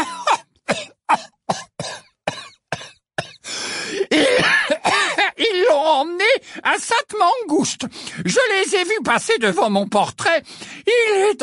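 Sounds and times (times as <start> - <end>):
coughing fit: 0.0 - 5.4
speech: 6.0 - 11.4.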